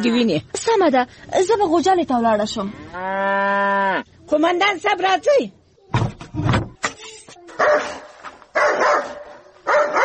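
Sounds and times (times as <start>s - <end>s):
speech: 0.0s - 6.5s
dog barking: 7.6s - 10.0s.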